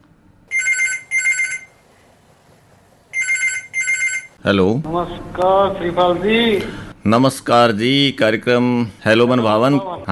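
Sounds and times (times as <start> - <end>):
telephone ringing for an incoming call: 0.5 - 1.8, 3.1 - 4.4
speech: 4.4 - 10.1.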